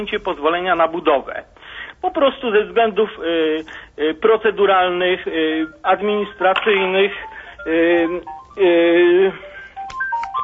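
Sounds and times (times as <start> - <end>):
speech: 0.0 - 9.5
telephone ringing with an incoming call: 5.4 - 10.4.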